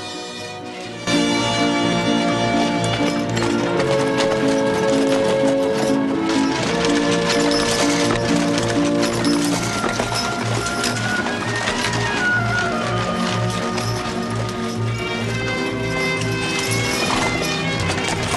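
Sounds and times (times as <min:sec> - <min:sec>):
music: 0:00.0 - 0:18.3
horses' hooves clip-clopping on a dusty track: 0:01.0 - 0:18.3.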